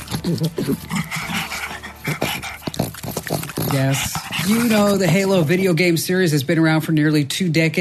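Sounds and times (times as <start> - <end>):
voice actor imitating pug dog growling and snarling: 0.0 - 4.8
voice actor imitating small dog panting for a video game: 0.0 - 5.6
speech: 0.2 - 2.5, 3.7 - 7.7.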